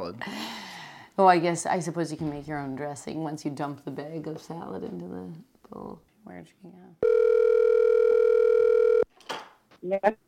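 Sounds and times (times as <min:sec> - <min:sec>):
speech: 0:00.1 - 0:00.4, 0:01.2 - 0:07.2, 0:09.8 - 0:10.2
telephone call ringing tone: 0:07.0 - 0:09.1.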